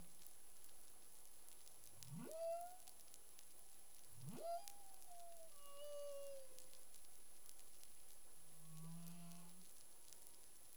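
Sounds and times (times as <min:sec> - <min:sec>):
faint underwater clicks: 0:00.0 - 0:10.7
humpback whale calls underwater in the Caribbean: 0:02.0 - 0:03.1, 0:04.0 - 0:07.0.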